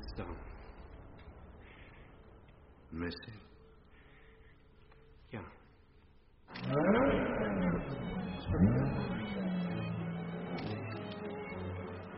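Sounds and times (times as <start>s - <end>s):
speech: 2.9s - 3.5s, 5.3s - 5.6s
car engine revving: 6.5s - 12.1s.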